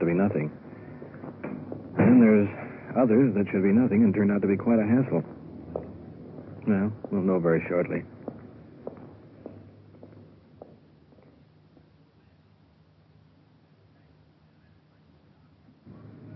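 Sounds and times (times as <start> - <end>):
speech: 0.0 - 0.7, 2.1 - 5.4, 6.7 - 8.1
low steady hiss: 0.0 - 16.3
footsteps walking up a path to a small English-style cottage: 5.2 - 7.3, 7.9 - 11.4.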